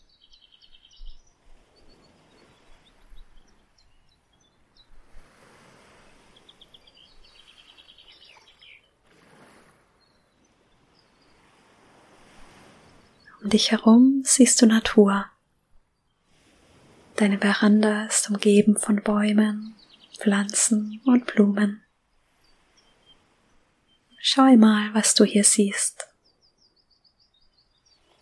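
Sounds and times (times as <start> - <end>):
birds chirping and trilling: 0.0 - 5.2, 5.8 - 9.1, 9.9 - 11.6, 12.3 - 15.2, 17.2 - 28.2
light breeze: 0.0 - 28.2
ocean surf washing in rolling surges: 5.0 - 15.2, 16.2 - 25.1
speech: 13.4 - 15.3, 17.2 - 21.8, 24.2 - 26.1.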